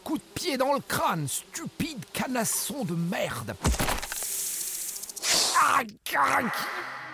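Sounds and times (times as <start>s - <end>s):
speech: 0.1s - 4.2s, 5.7s - 6.9s
voice imitating a venomous snake hissing beneath a horse's skull: 4.4s - 5.8s.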